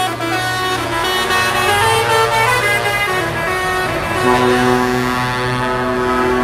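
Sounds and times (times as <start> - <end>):
truck engine rumble: 0.0 - 6.4
truck horn playing a melody: 0.0 - 6.4.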